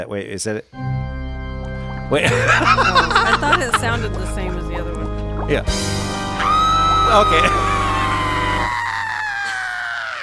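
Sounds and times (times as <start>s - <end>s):
speech: 0.0s - 0.9s, 2.1s - 6.5s, 7.1s - 7.8s
laughter: 2.1s - 5.1s, 6.4s - 10.1s
drawn-out Halloween scream sound effect: 5.5s - 10.2s.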